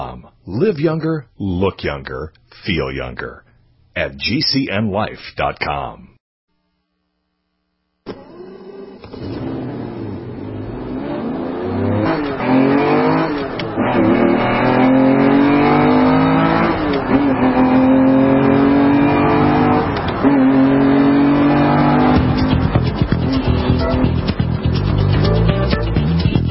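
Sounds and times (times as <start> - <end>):
speech: 0.1 - 6.1
race car engine revving and accelerating through gear shifts: 8.1 - 26.3.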